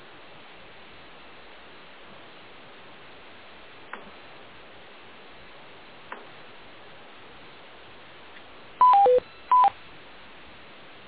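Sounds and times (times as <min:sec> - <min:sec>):
telephone keypad tones on a conference call: 0:08.8 - 0:09.7.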